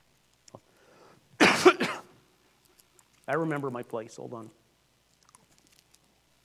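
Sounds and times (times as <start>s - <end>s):
person coughing with a rasping cough: 1.4s - 2.1s
person clearing throat: 1.4s - 2.2s
speech: 3.3s - 4.6s.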